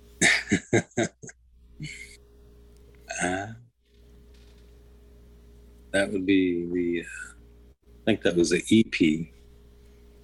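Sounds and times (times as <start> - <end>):
speech: 0.2 - 1.1, 6.1 - 7.2, 8.0 - 9.4
recorded burp played from a cassette tape: 3.1 - 3.7.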